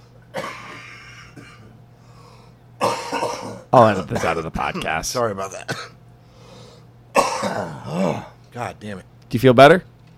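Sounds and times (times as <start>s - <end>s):
person coughing harshly after breathing in a drink: 0.3s - 1.8s, 2.8s - 5.0s, 5.6s - 6.0s, 7.1s - 8.4s
quiet breathing: 1.9s - 2.6s, 6.2s - 7.0s
speech: 3.7s - 6.0s, 8.1s - 9.9s.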